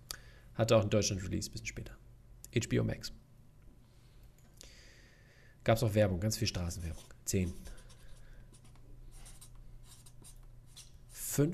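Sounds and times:
speech: 0.6s - 3.2s, 5.6s - 7.8s, 11.4s - 11.5s
several pens scratching on paper during a quiz countdown: 6.8s - 11.2s.

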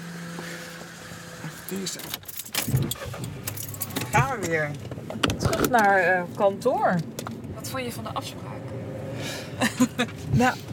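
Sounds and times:
low car interior hum: 0.0s - 10.7s
speech: 1.7s - 8.5s, 9.6s - 10.7s
keys jingling inside a car: 2.0s - 4.3s
laughter: 9.6s - 10.1s.

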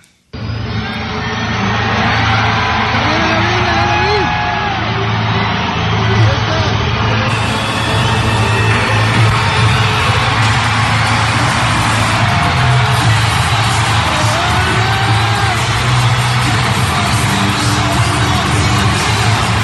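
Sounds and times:
large stadium crowd cheering at a football player's presentation in Guadalajara Mexico: 0.4s - 19.6s.

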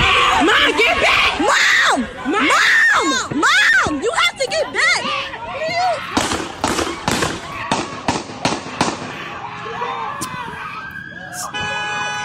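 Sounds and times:
frantic shouting voices: 0.0s - 11.5s
gunshots fired by police officers: 6.2s - 9.3s
faint siren-like tone: 10.6s - 12.2s.

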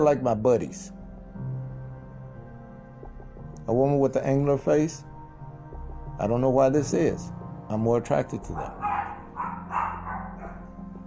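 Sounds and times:
speech: 0.0s - 1.0s, 3.7s - 5.1s, 6.2s - 8.9s
dogs barking outside: 8.4s - 10.9s.

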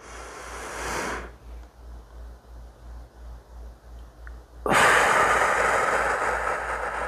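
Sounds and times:
deep breath drawn in during breathing exercise: 0.0s - 1.4s, 4.7s - 7.0s
long whooshing exhale during breathing exercise: 0.0s - 1.4s, 4.7s - 7.0s.

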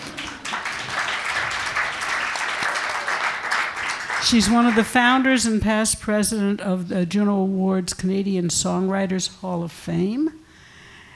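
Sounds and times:
crowd applauding: 0.0s - 5.3s
speech: 4.2s - 10.4s.

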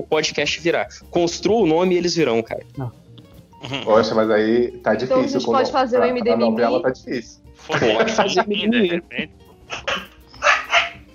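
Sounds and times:
speech: 0.0s - 3.0s, 3.6s - 10.1s
laughter: 3.6s - 4.1s, 7.6s - 11.0s
female dog barking: 9.9s - 11.1s.

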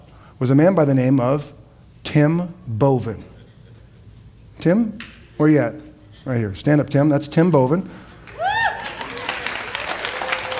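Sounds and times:
speech: 0.4s - 3.3s, 4.6s - 8.1s
audience clapping: 8.2s - 10.5s.

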